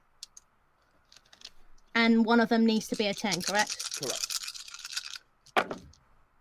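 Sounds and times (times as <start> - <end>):
dice shaken together and tumbling across a hard surface: 1.1 - 1.6, 2.8 - 6.0
speech: 2.0 - 4.3.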